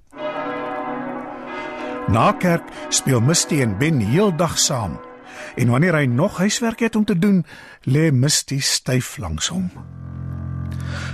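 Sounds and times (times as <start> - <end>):
church bell tolling: 0.1 - 6.5
speech: 2.1 - 10.0.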